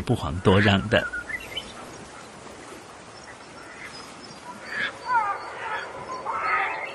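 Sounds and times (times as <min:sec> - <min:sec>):
black-faced spoonbills giving soft hoarse grunting calls: 0:00.0 - 0:06.9
speech: 0:00.1 - 0:01.2.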